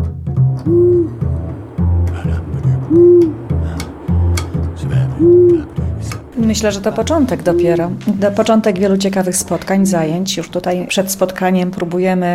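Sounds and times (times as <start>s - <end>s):
speech: 0.6s - 1.2s, 6.5s - 12.3s
owl hooting: 0.6s - 8.0s.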